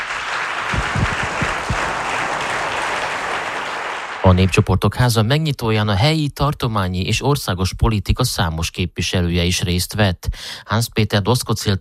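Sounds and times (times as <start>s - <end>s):
crowd applauding: 0.0s - 4.7s
speech: 4.2s - 11.8s.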